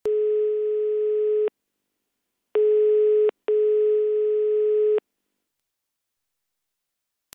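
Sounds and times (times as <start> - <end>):
telephone line tone: 0.1 - 1.5, 2.6 - 5.0.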